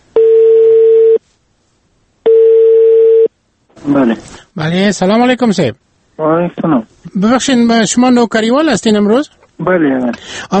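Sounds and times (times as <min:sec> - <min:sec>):
telephone ringback tone while placing a call: 0:00.2 - 0:01.2, 0:02.2 - 0:03.3
speech: 0:03.8 - 0:10.5.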